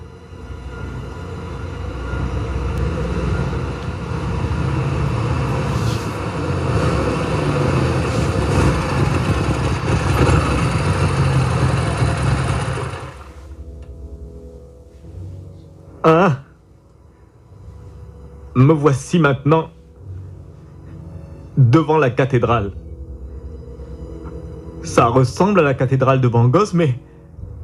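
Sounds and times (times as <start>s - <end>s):
motorcycle engine rumbling: 0.0s - 14.4s
speech: 18.6s - 19.8s, 21.6s - 22.8s, 24.8s - 27.1s.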